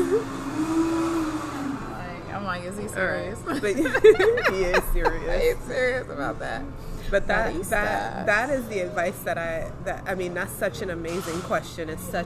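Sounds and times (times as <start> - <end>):
kitchen blender whirring: 0.0 - 2.3
people talking and chuckling: 0.0 - 12.2
speech: 2.7 - 12.2.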